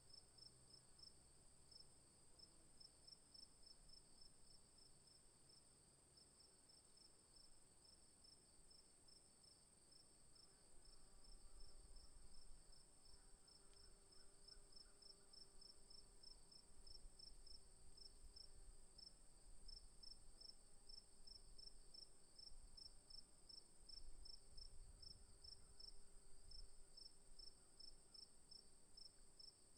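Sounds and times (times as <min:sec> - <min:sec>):
cricket chirping: 0:00.1 - 0:29.7.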